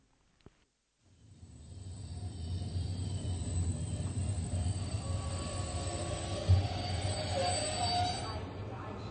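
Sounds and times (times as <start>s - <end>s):
train arriving at a railway station: 1.1s - 9.0s
train hiss: 1.2s - 8.3s
metallic train wheel squeals: 1.7s - 8.6s.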